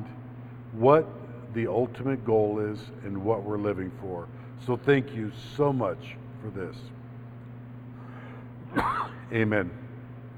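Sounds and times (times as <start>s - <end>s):
low electrical hum: 0.0s - 10.3s
speech: 0.8s - 7.0s, 8.7s - 9.8s
person coughing: 8.6s - 9.4s.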